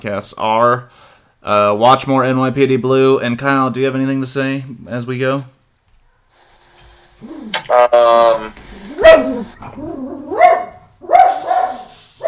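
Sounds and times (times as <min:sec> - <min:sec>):
speech: 0:00.0 - 0:05.6, 0:07.2 - 0:08.6
dog yelping: 0:07.0 - 0:12.2
dog barking: 0:08.6 - 0:12.2.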